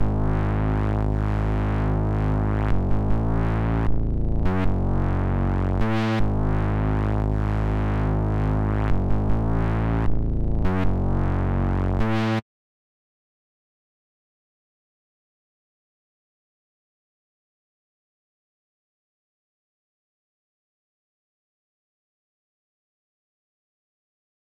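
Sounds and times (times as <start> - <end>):
ARP2600 synth bass loop in G sharp minor: 0.0 - 12.4.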